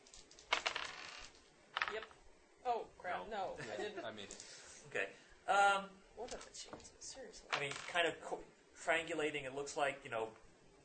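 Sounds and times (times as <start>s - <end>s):
dice rolling on a tabletop: 0.0s - 2.2s, 7.5s - 8.0s
speech: 2.7s - 10.8s.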